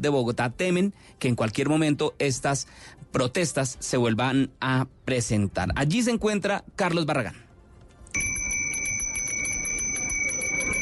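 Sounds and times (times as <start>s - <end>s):
speech: 0.0s - 7.4s
faint outdoor background: 0.0s - 10.8s
ice cream vendor's hand bell ringing: 8.2s - 10.8s.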